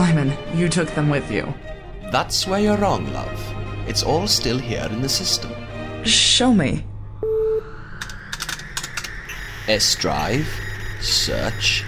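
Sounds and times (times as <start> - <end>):
speech: 0.1 - 6.9, 9.7 - 11.8
brief steady beep tone: 7.2 - 7.9, 9.2 - 11.8.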